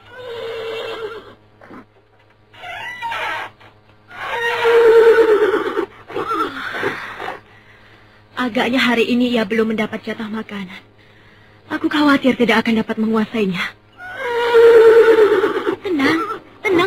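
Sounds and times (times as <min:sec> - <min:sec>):
horse neighing: 0:02.6 - 0:07.4, 0:14.0 - 0:16.5
speech: 0:08.5 - 0:10.9, 0:11.9 - 0:13.8.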